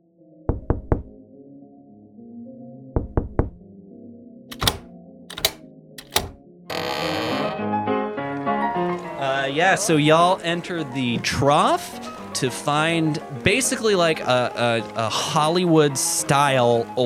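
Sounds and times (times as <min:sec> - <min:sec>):
secret knock pattern on a door with a peephole: 0:00.5 - 0:01.1, 0:03.0 - 0:03.6
soft music bed: 0:00.5 - 0:17.0
speech: 0:09.5 - 0:17.0.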